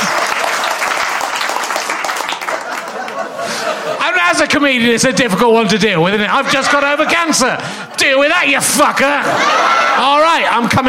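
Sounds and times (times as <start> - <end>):
audience applause: 0.0 - 3.9
laughter: 2.3 - 10.8
speech: 4.3 - 10.8.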